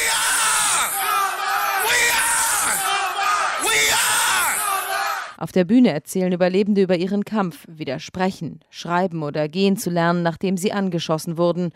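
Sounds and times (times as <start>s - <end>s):
crowd at a memorial shouting a school battle cry: 0.0s - 5.4s
speech: 5.4s - 11.7s.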